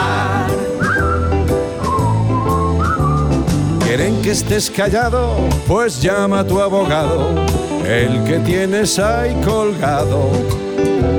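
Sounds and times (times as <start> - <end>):
steady low instrumental backing with regular beats: 0.0 - 11.1
person whistling a lively melody: 0.8 - 3.8
speech: 4.2 - 11.1.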